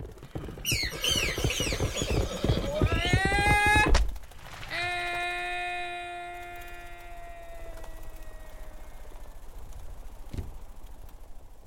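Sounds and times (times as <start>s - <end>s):
horse hooves stamping and clattering: 0.0s - 11.6s
panicked horse neighing: 0.4s - 3.7s.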